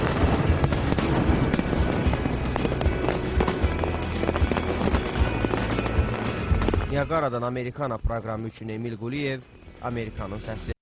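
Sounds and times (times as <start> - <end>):
fireworks popping and crackling over a waterfall: 0.0 - 7.3
speech: 7.0 - 10.7.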